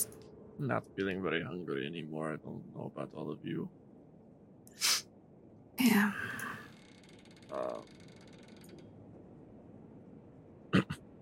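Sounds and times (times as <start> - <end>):
speech: 0.0 - 3.8, 5.8 - 6.4, 7.5 - 8.0
door creaking open down a hallway: 6.5 - 9.0.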